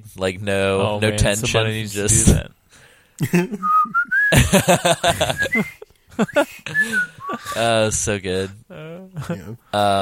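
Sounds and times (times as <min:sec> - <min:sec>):
speech: 0:00.1 - 0:10.0
voiced laugh-like vocal sounds: 0:03.2 - 0:07.7
person whistling a theme tune: 0:03.6 - 0:04.4, 0:05.2 - 0:05.8, 0:06.7 - 0:07.6.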